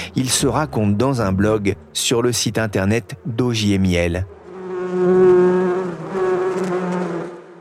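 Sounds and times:
speech: 0:00.2 - 0:04.4
many bees buzzing around hives: 0:04.2 - 0:07.5.

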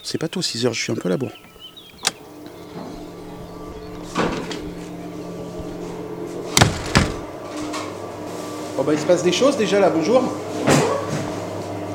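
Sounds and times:
steady low mechanical hum: 0:00.0 - 0:11.9
speech: 0:00.1 - 0:01.5, 0:08.8 - 0:10.6
shop door being pushed open: 0:01.4 - 0:02.8, 0:06.5 - 0:07.3
thuds: 0:06.6 - 0:07.3.

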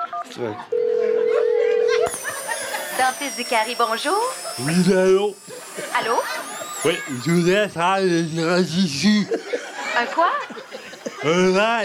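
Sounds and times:
laughter: 0:00.0 - 0:03.2, 0:04.4 - 0:11.8
speech: 0:00.2 - 0:00.8, 0:03.0 - 0:10.6, 0:11.2 - 0:11.8
telephone dial tone on a call to a dentist: 0:00.8 - 0:03.4.

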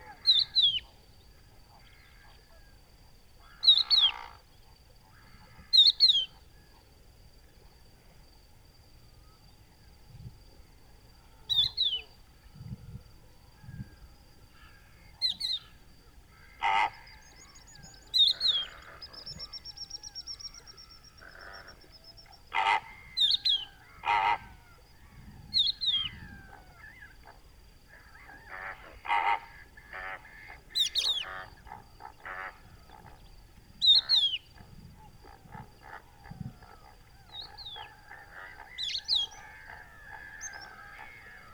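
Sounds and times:
adult crested lark Galerida cristata calling in a salt marsh: 0:00.0 - 0:01.0, 0:03.4 - 0:06.4, 0:11.5 - 0:12.3, 0:14.5 - 0:41.5.

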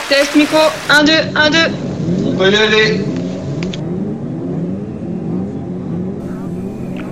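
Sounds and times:
speech: 0:00.1 - 0:03.1
podcast intro jingle built on an engine revving and accelerating: 0:01.7 - 0:07.1.

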